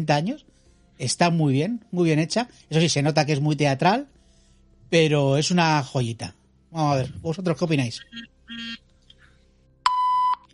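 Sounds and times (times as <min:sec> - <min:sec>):
speech: 0:00.0 - 0:04.2, 0:04.9 - 0:08.8
mobile phone beeping with electronic tones: 0:09.9 - 0:10.5.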